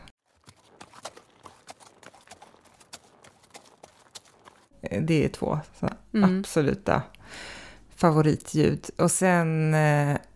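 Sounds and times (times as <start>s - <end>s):
horse hooves clip-clopping: 0.2s - 4.8s
speech: 4.8s - 10.3s.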